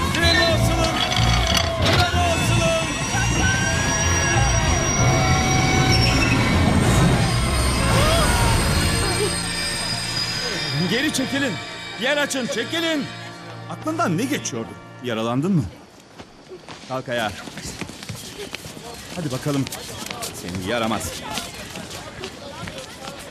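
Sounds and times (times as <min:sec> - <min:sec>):
train braking hard with wheels squealing: 0:00.2 - 0:13.3
speech: 0:11.2 - 0:13.2, 0:13.7 - 0:15.8, 0:16.9 - 0:17.5, 0:19.1 - 0:21.4.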